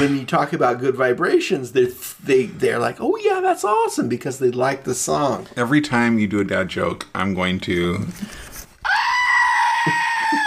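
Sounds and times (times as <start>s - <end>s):
speech: 0.0s - 8.4s
squeezed screaming goat toy bleating scream: 8.8s - 10.4s.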